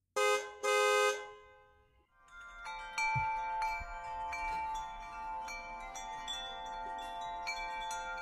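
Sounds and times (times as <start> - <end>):
loud blaring car horn honks: 0.2 - 1.8
bright ringing wind chimes tinkling: 2.0 - 8.1.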